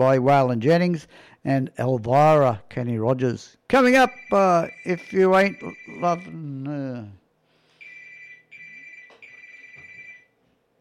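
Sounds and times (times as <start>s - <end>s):
speech: 0.0s - 7.2s
telephone ringing with an electronic trill: 4.0s - 6.4s, 7.8s - 10.4s.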